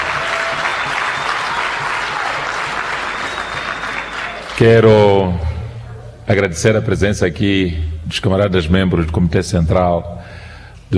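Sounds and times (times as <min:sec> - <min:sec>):
crowd applauding at a party gathering: 0:00.0 - 0:04.8
speech: 0:04.6 - 0:05.5, 0:06.3 - 0:10.9.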